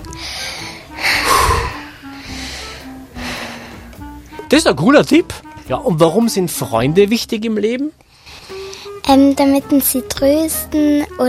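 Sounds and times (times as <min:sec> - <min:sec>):
person breathing deeply in and out when stressed: 0:00.1 - 0:04.0, 0:08.1 - 0:09.0
speech: 0:04.5 - 0:08.0, 0:09.1 - 0:11.2.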